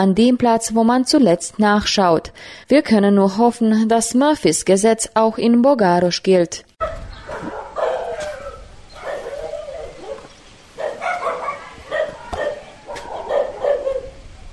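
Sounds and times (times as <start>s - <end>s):
speech: 0.0s - 6.9s
faint outdoor background: 0.0s - 14.5s
village dogs in Bogaros barking at strangers: 6.8s - 14.5s.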